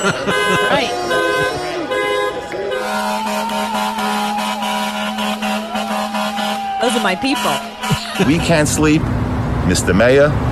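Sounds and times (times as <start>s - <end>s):
speech: 0.0s - 1.1s, 7.0s - 10.5s
laughter: 0.0s - 8.9s
car horns honking in protest: 0.0s - 9.0s.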